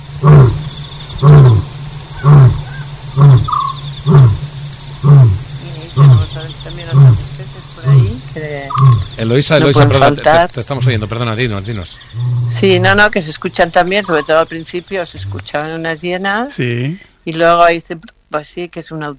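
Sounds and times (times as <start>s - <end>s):
lion roaring at night: 0.0s - 10.1s, 12.1s - 13.2s, 15.2s - 15.6s
crickets or other insects chirring: 0.0s - 19.1s
speech: 9.2s - 19.1s.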